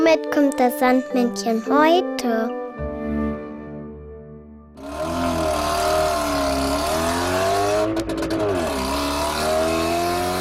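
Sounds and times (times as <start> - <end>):
speech: 0.1 - 2.6
car engine idling, revving and driving off: 4.8 - 10.3.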